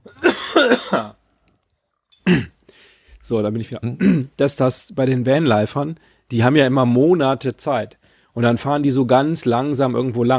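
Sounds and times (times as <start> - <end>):
person coughing harshly: 0.0 - 1.2, 2.2 - 2.6, 4.0 - 4.4
speech: 0.9 - 1.2, 3.3 - 10.3.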